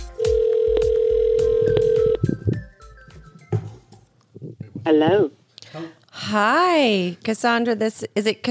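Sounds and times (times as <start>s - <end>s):
phone line ringing tone as a call is placed: 0.2s - 2.3s
speech: 6.4s - 8.4s.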